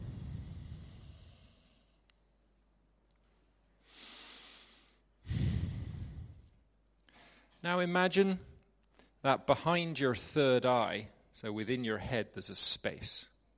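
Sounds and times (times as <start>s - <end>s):
slow breathing during a seated meditation: 0.0s - 2.3s, 3.8s - 7.6s
speech: 7.6s - 8.5s, 9.2s - 13.3s.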